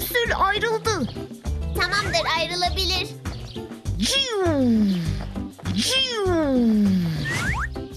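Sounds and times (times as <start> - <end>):
speech: 0.3 - 3.2, 4.0 - 5.2, 5.8 - 7.5
person imitating a cat: 4.0 - 5.1, 5.8 - 7.1.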